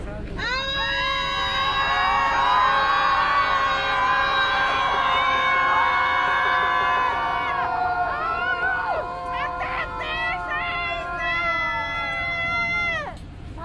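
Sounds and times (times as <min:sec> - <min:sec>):
large crowd screaming and yelling together: 0:00.4 - 0:13.2.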